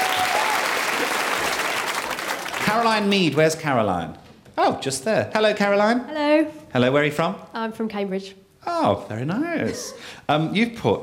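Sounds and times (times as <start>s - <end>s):
audience applauding: 0.0s - 3.4s
speech: 2.7s - 11.0s.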